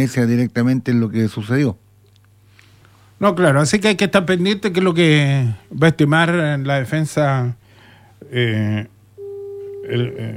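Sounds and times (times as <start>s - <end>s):
speech: 0.0s - 1.8s, 3.2s - 7.6s, 8.2s - 8.9s, 9.9s - 10.3s
telephone call tone: 9.2s - 10.3s.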